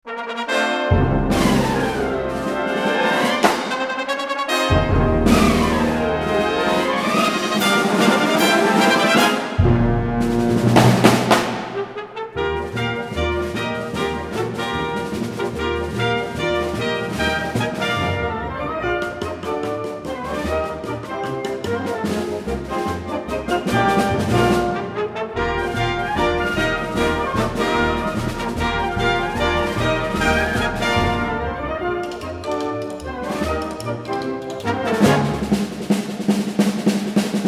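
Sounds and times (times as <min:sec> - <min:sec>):
three snare drums played with sticks: 0:01.0 - 0:04.1, 0:04.7 - 0:37.4.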